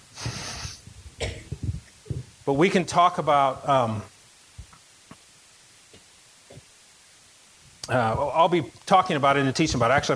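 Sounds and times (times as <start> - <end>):
harsh coughs: 1.2 - 1.6
speech: 2.5 - 4.1, 7.9 - 10.1.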